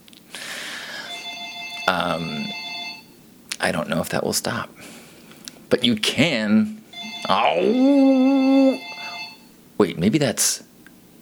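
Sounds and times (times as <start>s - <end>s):
phone ringing with a bright electronic tone: 0.9s - 3.2s, 6.9s - 9.5s
speech: 1.9s - 2.6s, 3.6s - 5.0s, 5.7s - 8.9s, 9.8s - 10.7s.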